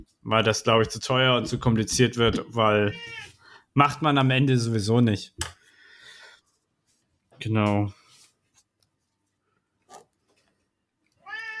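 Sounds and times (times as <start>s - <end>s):
speech: 0.0s - 5.6s, 7.4s - 8.0s
cat meowing: 2.9s - 3.3s, 11.2s - 11.5s.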